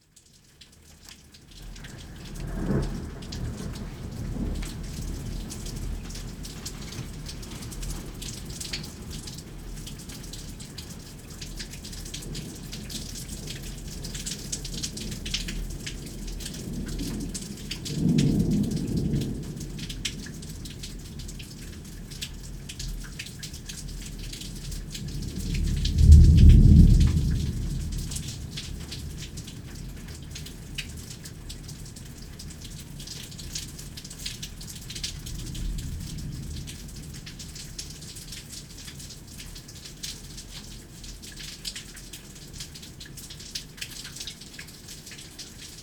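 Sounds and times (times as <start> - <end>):
thunderstorm: 1.7 - 10.4, 11.8 - 21.6, 24.5 - 30.2, 34.9 - 38.3.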